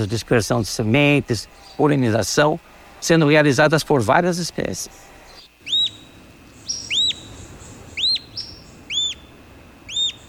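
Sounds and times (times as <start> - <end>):
speech: 0.0 - 5.1
soft hiss: 0.0 - 10.2
olivaceous woodcreeper singing in Iguaçu National Park: 5.3 - 10.2.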